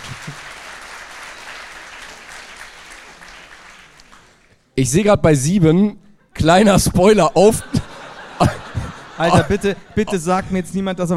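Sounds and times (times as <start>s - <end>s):
audience applause: 0.0s - 4.6s
speech: 4.8s - 7.8s, 9.2s - 11.1s
laughter: 6.2s - 10.6s.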